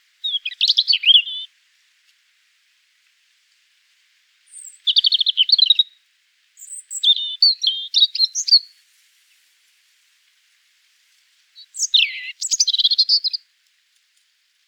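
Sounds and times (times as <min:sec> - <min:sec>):
European Robin singing, Erithacus rubecula: 0:00.2 - 0:01.5, 0:04.5 - 0:05.9, 0:06.6 - 0:08.7, 0:11.6 - 0:13.4.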